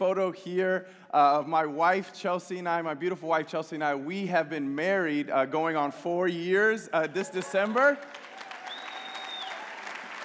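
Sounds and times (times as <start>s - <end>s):
speech: 0.0s - 8.3s
room full of people applauding: 7.3s - 10.2s
faint whistle-like tone: 8.7s - 9.6s.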